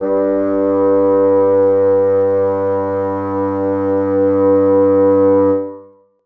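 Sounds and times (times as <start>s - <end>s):
bassoons sustaining G2: 0.0s - 6.0s.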